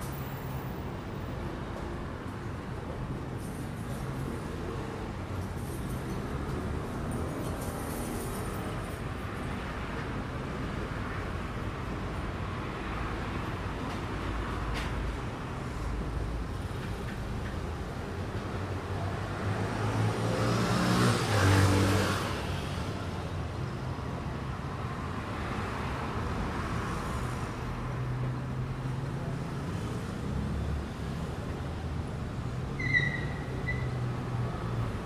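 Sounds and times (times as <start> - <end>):
road noise of passing vehicles outside a hotel lobby: 0.0 - 35.0
louder car passing by: 19.4 - 22.8.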